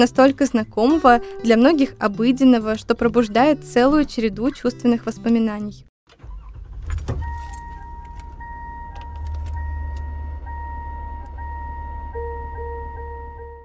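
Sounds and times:
speech: 0.0s - 5.9s
low rumble of idling car engine: 6.1s - 13.6s
keys jangling: 6.9s - 9.6s
car open-door warning chime: 7.2s - 13.6s.

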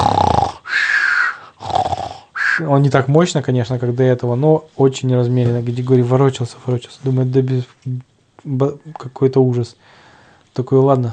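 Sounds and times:
person imitating loud snoring: 0.0s - 2.7s
breathy exhale: 0.5s - 2.7s, 9.8s - 10.4s
speech: 2.6s - 10.0s, 10.6s - 11.1s.

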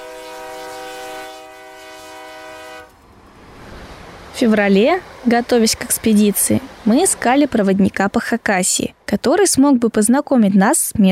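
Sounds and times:
electric commuter train horn blast: 0.0s - 3.0s
electric commuter train rumbling past: 0.0s - 9.6s
speech: 4.4s - 11.1s.

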